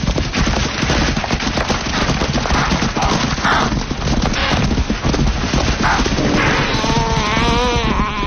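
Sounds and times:
chasing lioness heavy footsteps: 0:00.0 - 0:08.2
wildebeest herd hooves stampeding through dry grass at night: 0:00.0 - 0:08.2
animal grunts and calls: 0:02.6 - 0:03.8, 0:05.8 - 0:08.2.

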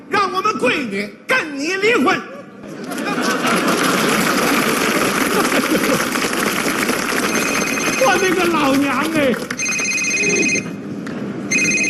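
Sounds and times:
speech: 0:00.3 - 0:03.6, 0:05.6 - 0:06.3, 0:08.0 - 0:09.6
laughter: 0:02.3 - 0:07.4
telephone ringing with bright trilling electronic tone: 0:07.1 - 0:08.8, 0:09.4 - 0:10.8, 0:11.5 - 0:11.8.

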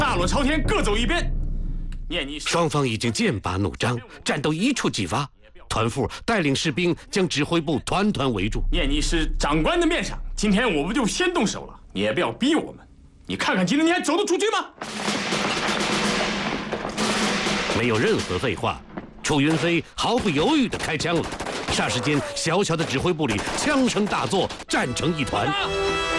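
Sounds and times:
speech: 0:00.1 - 0:01.4, 0:02.1 - 0:15.3, 0:17.8 - 0:26.1
rapid gunfire inside a small command post: 0:14.8 - 0:22.0.

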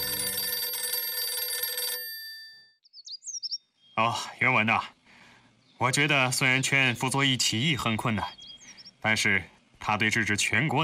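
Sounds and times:
loud clanging telephone bell ringing: 0:00.0 - 0:02.8
speech: 0:04.0 - 0:05.0, 0:05.8 - 0:08.4, 0:09.0 - 0:10.8.

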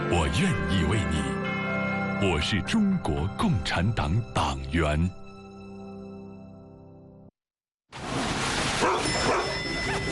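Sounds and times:
speech: 0:00.2 - 0:01.4, 0:02.2 - 0:05.2
dog being walked without a leash barking: 0:08.8 - 0:10.1.

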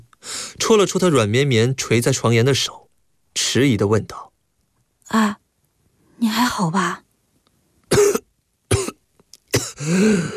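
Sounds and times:
speech: 0:00.7 - 0:02.8, 0:03.4 - 0:04.3, 0:05.1 - 0:05.4, 0:06.2 - 0:07.0, 0:09.8 - 0:10.3
feeble man lying on a bed coughing weakly: 0:07.9 - 0:10.3.

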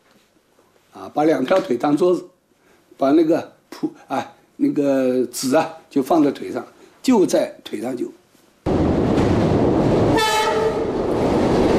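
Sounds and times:
speech: 0:01.0 - 0:02.3, 0:03.0 - 0:08.2
train rumbling along the rails: 0:08.7 - 0:11.7
train horn blast: 0:10.1 - 0:11.1.

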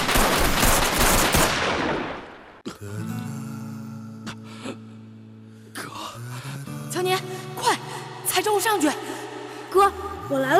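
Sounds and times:
rapid automatic gunfire in a drama: 0:00.0 - 0:02.3
speech: 0:08.6 - 0:09.1, 0:09.7 - 0:10.5.

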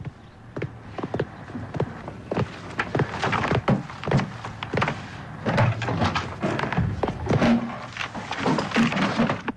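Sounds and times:
person rummaging hastily through books in a drawer: 0:02.4 - 0:09.5.

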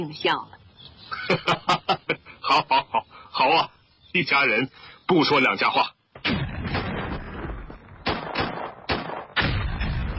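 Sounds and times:
speech: 0:00.0 - 0:00.6, 0:01.2 - 0:06.0
laughter: 0:01.1 - 0:03.0
artillery fire rumbling from the south: 0:06.2 - 0:10.1
heavy booming artillery blasts: 0:06.2 - 0:10.1.

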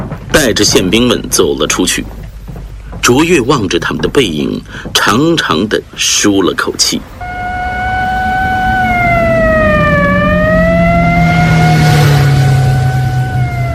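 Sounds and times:
heavy trucks carrying prisoners rumbling down a street: 0:00.0 - 0:13.7
speech: 0:00.4 - 0:02.2, 0:03.1 - 0:07.2
siren wailing: 0:07.2 - 0:13.7.

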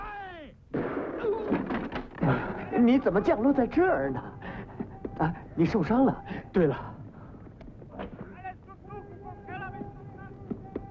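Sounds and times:
gunshot as a bullet grazes a man's arm on a rooftop: 0:00.7 - 0:02.1
speech: 0:02.3 - 0:04.4, 0:05.2 - 0:06.9.

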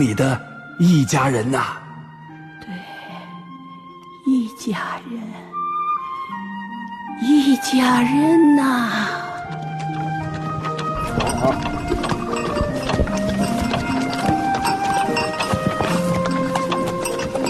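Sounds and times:
speech: 0:00.0 - 0:01.8, 0:04.6 - 0:05.5, 0:07.2 - 0:10.2, 0:11.2 - 0:13.4
donkey hooves clip-clopping over gullies and ridges: 0:09.0 - 0:17.4
bells jingling: 0:10.2 - 0:17.4.

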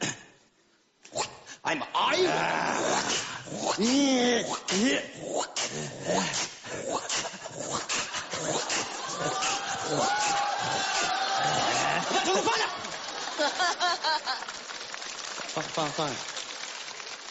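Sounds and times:
speech: 0:01.6 - 0:07.0, 0:12.3 - 0:14.6, 0:15.6 - 0:16.3
person imitating a dog barking, yelping and whimpering: 0:02.1 - 0:12.3
crowd murmuring and laughing: 0:08.1 - 0:17.2.

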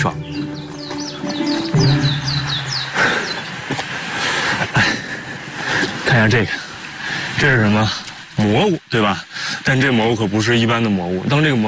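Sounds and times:
speech: 0:00.0 - 0:00.3, 0:06.2 - 0:06.6, 0:07.4 - 0:11.6
bird chirping along a mountain trail in the Changbai Mountains: 0:00.0 - 0:03.8
steady rushing outdoor noise: 0:01.3 - 0:06.3.

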